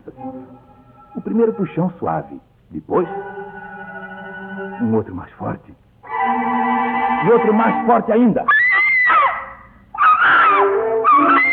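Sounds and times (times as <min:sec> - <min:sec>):
speech: 0:01.3 - 0:03.3, 0:04.8 - 0:05.8, 0:07.2 - 0:08.6
girl screaming in fright: 0:08.5 - 0:11.5.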